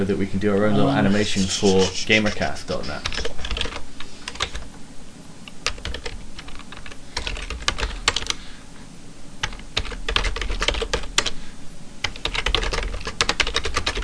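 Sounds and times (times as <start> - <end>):
speech: 0.0 - 3.3
typing an email on a computer keyboard: 2.8 - 4.6, 5.6 - 8.4, 9.4 - 11.4, 12.0 - 14.0.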